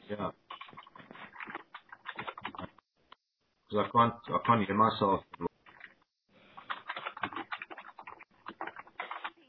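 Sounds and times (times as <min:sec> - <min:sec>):
speech: 0:00.1 - 0:00.4, 0:03.7 - 0:05.3
rapid typing on a computer keyboard: 0:00.5 - 0:02.8, 0:06.6 - 0:09.4.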